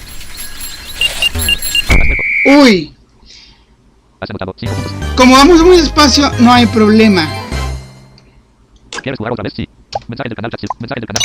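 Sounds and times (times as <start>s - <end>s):
video game noise: 0.0s - 11.2s
short high electronic warning beeps from a video game: 0.3s - 2.5s
speech: 2.4s - 3.0s, 4.2s - 7.4s, 9.0s - 11.2s.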